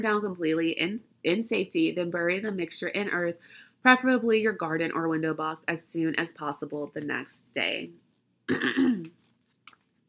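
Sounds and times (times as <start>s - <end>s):
speech: 0.0s - 9.2s
person coughing loudly and harshly: 8.5s - 9.1s.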